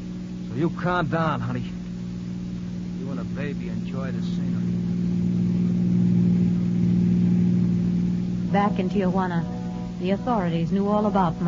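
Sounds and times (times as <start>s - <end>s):
car engine driving across the border from Tijuana: 0.0s - 11.4s
speech: 0.6s - 1.8s, 3.2s - 4.6s, 8.5s - 11.4s.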